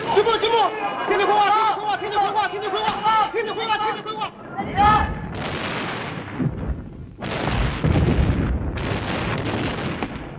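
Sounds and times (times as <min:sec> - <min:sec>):
speech: 0:00.2 - 0:05.2
artillery firing in battle: 0:05.1 - 0:10.3.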